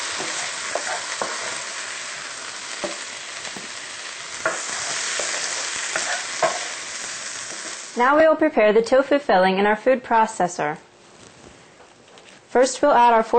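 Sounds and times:
spinach and vegetables sautéing in a hot pan: 0.0s - 8.4s
stirring utensil scraping and clicking in a hot pan: 0.1s - 1.6s, 4.4s - 6.7s
speech: 8.0s - 10.9s, 12.5s - 13.3s.

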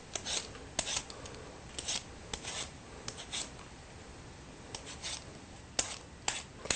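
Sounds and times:
potato being peeled for mashed potatoes: 0.1s - 1.1s, 1.7s - 3.6s, 4.7s - 6.7s.

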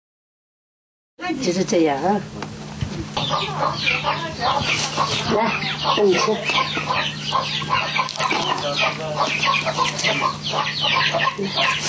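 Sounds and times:
speech: 1.2s - 2.5s, 3.2s - 11.8s
steady low hum: 1.2s - 11.8s
ducks chattering and quacking: 3.0s - 11.8s.

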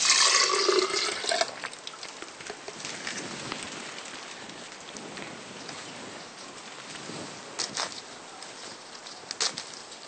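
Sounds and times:
squeezed juice poured back into blender: 0.0s - 2.1s
drips of juice: 0.0s - 2.3s.

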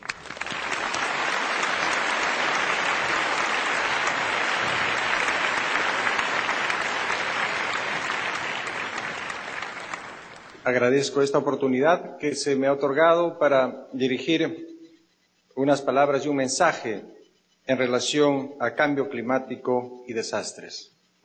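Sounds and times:
warm audience applause welcoming a speaker to a talk: 0.0s - 10.6s
speech: 10.7s - 14.7s, 15.6s - 20.9s.

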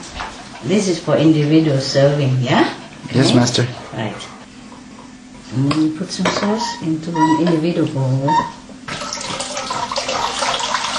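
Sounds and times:
speech: 0.6s - 4.3s, 5.5s - 8.6s
hot water running from a tap: 8.9s - 10.9s.

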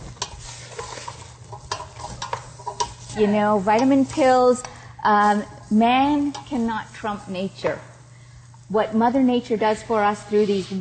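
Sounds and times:
utensil scraping a pan while stirring sweet potato chunks: 0.0s - 4.6s, 10.2s - 10.7s
sweet potato chunks frying in a sizzling pan: 0.0s - 10.7s
speech: 3.2s - 7.9s, 8.7s - 10.7s.

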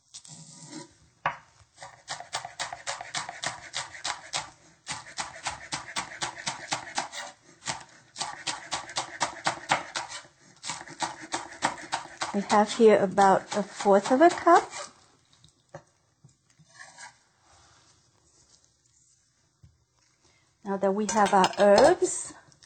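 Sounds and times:
knife chopping green onions: 1.3s - 14.9s, 21.1s - 22.1s
speech: 12.4s - 14.8s, 20.8s - 22.4s.

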